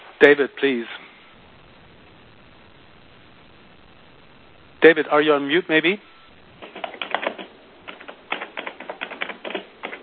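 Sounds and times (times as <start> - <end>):
speech: 0.2 - 1.0, 4.8 - 6.1
typing on a computer keyboard through an online meeting line: 6.6 - 10.0.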